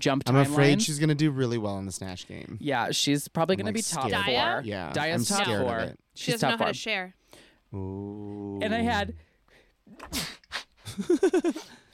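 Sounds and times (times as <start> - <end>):
speech: 0.0 - 9.2, 9.9 - 11.8
person sneezing: 10.0 - 10.7
person sniffing: 10.0 - 10.8.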